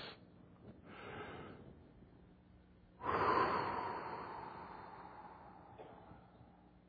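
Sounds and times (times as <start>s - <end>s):
deep cleansing breath: 3.0s - 6.7s.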